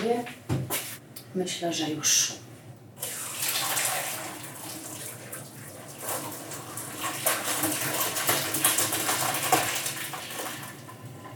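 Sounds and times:
speech: 0.1 - 0.5, 1.3 - 2.4
kitchen tap water rinsing cooked tortellini in a sink: 3.0 - 11.1.

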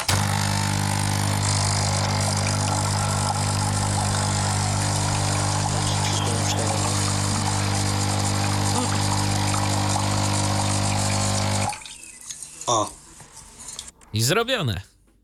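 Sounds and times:
capsule coffee machine pump droning during cleaning rinse: 0.0 - 11.8
water splashing through capsule coffee machine: 0.1 - 13.9
speech: 12.7 - 13.0, 14.1 - 14.9.

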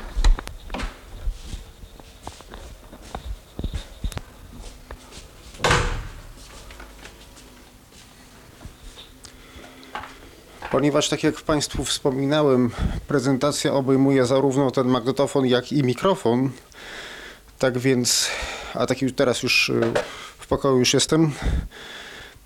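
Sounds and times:
door thudding shut: 5.6 - 6.3
speech: 10.8 - 17.0, 17.6 - 22.0.

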